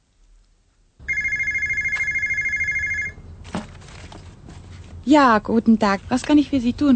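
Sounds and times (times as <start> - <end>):
office telephone ringing with electronic trill: 1.0 - 3.2
handling sound: 1.3 - 5.1
speech: 5.0 - 6.9.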